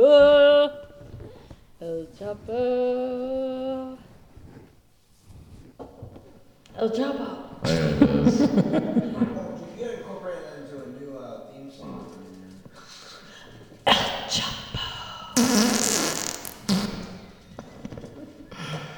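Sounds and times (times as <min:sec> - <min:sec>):
sampled fart noises pitched and chopped into a rhythmic pattern: 0:00.2 - 0:08.6, 0:13.9 - 0:18.1
speech: 0:02.3 - 0:03.0, 0:06.8 - 0:08.8
people chuckling: 0:07.6 - 0:10.2, 0:17.7 - 0:18.9.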